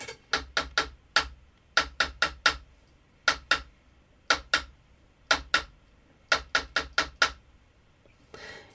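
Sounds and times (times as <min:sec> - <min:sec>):
hand taps beating out the rhythm of a poem: 0:00.3 - 0:03.7, 0:04.3 - 0:07.4.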